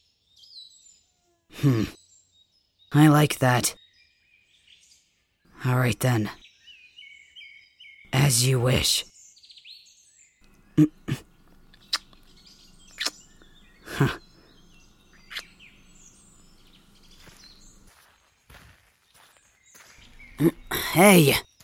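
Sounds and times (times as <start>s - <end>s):
faint birdsong chirping: 0.0s - 21.6s
speech: 1.5s - 2.0s, 2.9s - 3.8s, 5.6s - 6.4s, 8.3s - 9.1s, 10.8s - 11.3s, 14.0s - 14.2s, 20.4s - 21.5s
footsteps walking away: 16.8s - 20.4s.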